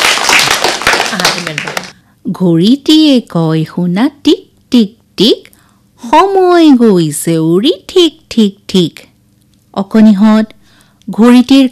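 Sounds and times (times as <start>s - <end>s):
many hands clapping for a child: 0.0s - 2.0s
speech: 2.4s - 5.5s, 6.1s - 9.1s, 9.8s - 11.6s.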